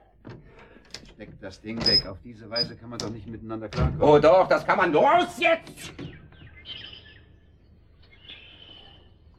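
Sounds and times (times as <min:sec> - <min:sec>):
speech: 0:01.2 - 0:06.8
blackbird singing outside an open balcony door: 0:05.8 - 0:09.3.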